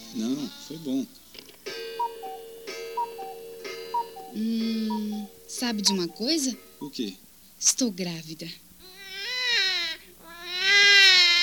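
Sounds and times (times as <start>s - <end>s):
speech: 0.1s - 1.2s, 4.4s - 4.9s, 5.5s - 8.6s
baby boy wailing in high-pitched cries: 8.8s - 11.4s.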